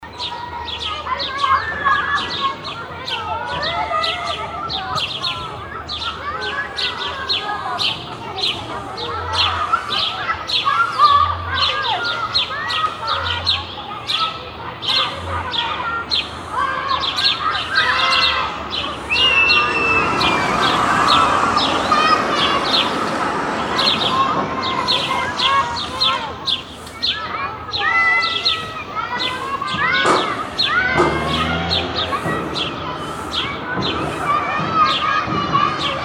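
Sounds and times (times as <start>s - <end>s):
playground ambience in Germany: 0.0s - 36.0s.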